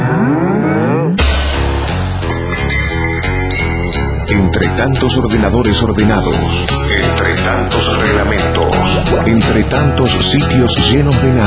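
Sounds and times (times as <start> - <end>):
loud drawn-out cow moo with wavering pitch: 0.0 - 1.2
loud beat-driven music: 1.2 - 11.4
speech: 4.6 - 11.4.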